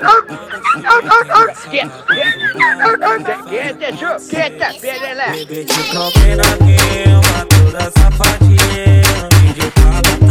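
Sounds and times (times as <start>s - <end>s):
dog barking and yipping: 0.0s - 3.3s
laughter: 0.0s - 6.3s
speech: 0.8s - 10.0s.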